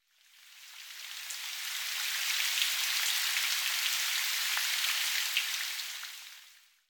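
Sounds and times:
steady rain: 0:00.4 - 0:06.7.

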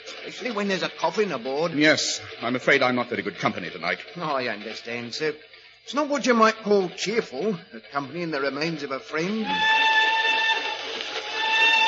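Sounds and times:
speech: 0:00.2 - 0:09.8
steam train whistle blowing: 0:09.3 - 0:11.8.

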